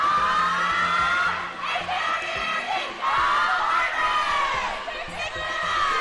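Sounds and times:
crowd of girls cheering and shrieking at the edge of a pool: 0.0 - 5.9.

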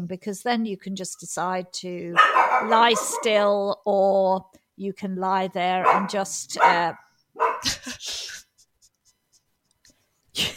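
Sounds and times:
speech: 0.0 - 8.2
dog at home barking at people moving around outside: 2.2 - 3.5, 5.8 - 7.7.

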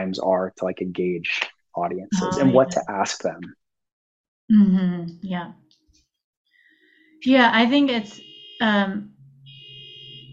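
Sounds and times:
speech: 0.0 - 3.6, 4.5 - 5.6, 7.2 - 9.1
car alarm: 7.8 - 10.3.

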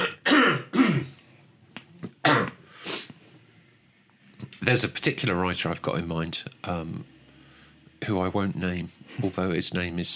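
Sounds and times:
person coughing harshly: 0.0 - 1.2, 2.2 - 2.6
speech: 4.7 - 7.2, 8.0 - 10.1.

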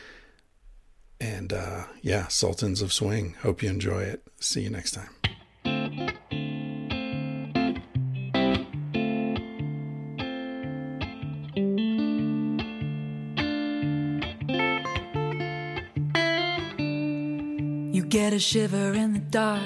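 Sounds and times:
speech: 1.4 - 5.2, 18.4 - 19.6
bright clean-toned electric guitar picking quick melodic phrases: 5.2 - 19.6.

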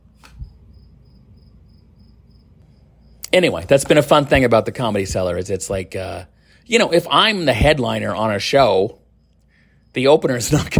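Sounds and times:
cricket chirping outside the room: 0.0 - 10.7
low hum: 0.0 - 10.7
speech: 3.3 - 9.0, 10.0 - 10.7.

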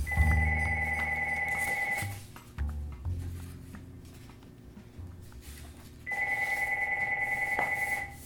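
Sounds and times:
telephone ringing with electronic trill: 0.1 - 2.2, 6.1 - 8.2.

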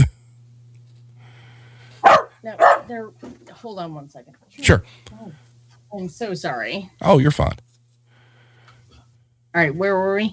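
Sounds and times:
hum: 0.0 - 10.3
dogs wrestling and barking: 2.0 - 3.0
speech: 2.4 - 7.6, 9.5 - 10.3.

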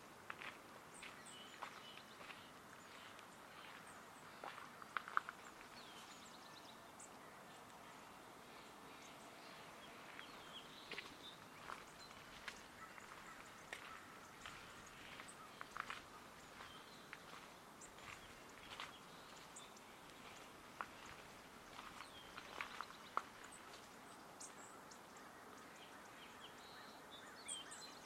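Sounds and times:
soft hiss of open air: 0.0 - 28.0
footsteps along an outdoor path: 0.2 - 6.7, 8.9 - 24.6.

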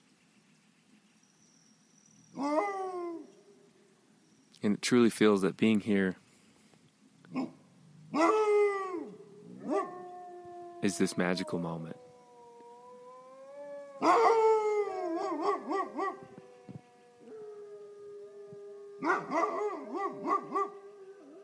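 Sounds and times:
wolves howling in a canyon: 2.3 - 3.6, 7.3 - 21.4
speech: 4.6 - 6.2, 10.9 - 12.1.

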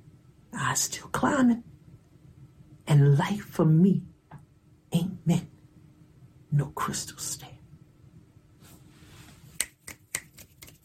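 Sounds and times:
low hum: 0.0 - 10.8
speech: 0.8 - 1.7, 2.9 - 4.1, 4.9 - 5.5, 6.5 - 7.6
finger snapping in appreciation after a poem is read aloud: 9.6 - 10.8.

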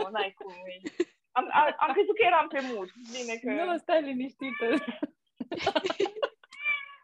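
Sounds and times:
speech: 0.1 - 6.0
laughter: 4.7 - 6.6
cat meowing for food: 6.6 - 7.0.

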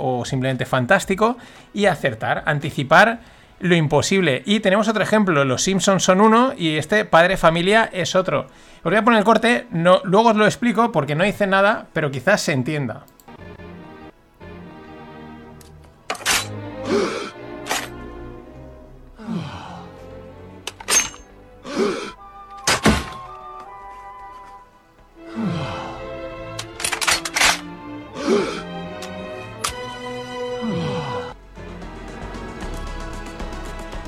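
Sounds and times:
speech: 0.1 - 13.5
dramatic music: 13.2 - 34.0
pistol being loaded: 15.6 - 16.6, 17.7 - 18.0, 20.7 - 21.3, 26.5 - 27.7, 29.0 - 29.8.

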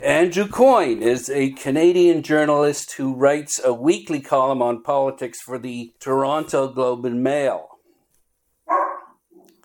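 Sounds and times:
speech: 0.0 - 7.7
loud dog bark: 8.7 - 9.2.

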